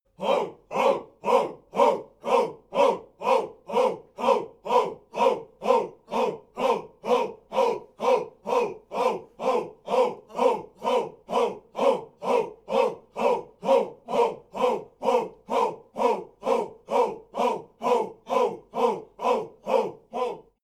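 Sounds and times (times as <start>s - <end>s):
people chanting simple chants: 0.1s - 20.6s.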